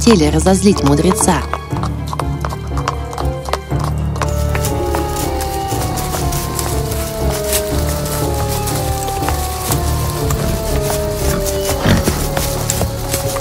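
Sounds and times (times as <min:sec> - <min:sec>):
speech: 0:00.0 - 0:01.9
ridden horses' hooves clip-clopping: 0:00.0 - 0:13.3
horse whinny: 0:10.2 - 0:12.6.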